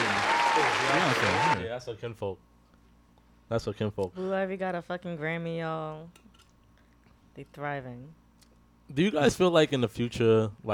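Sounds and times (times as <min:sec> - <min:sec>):
applause: 0:00.0 - 0:01.6
speech: 0:00.9 - 0:02.5, 0:03.5 - 0:06.4, 0:07.4 - 0:08.2, 0:08.9 - 0:10.7.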